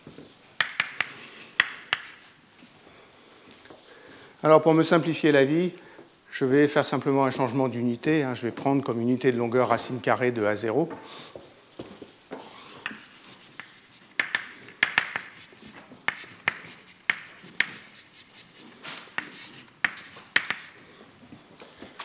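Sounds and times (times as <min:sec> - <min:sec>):
quick crisp strokes and taps of writing out an equation: 0:00.6 - 0:02.3, 0:12.8 - 0:20.8
speech: 0:04.4 - 0:05.8, 0:06.4 - 0:11.4
light scratchy rubbing: 0:12.8 - 0:20.8.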